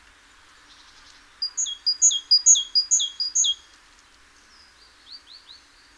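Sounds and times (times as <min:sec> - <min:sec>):
great tit Parus major singing two-note phrases: 0:01.4 - 0:03.6.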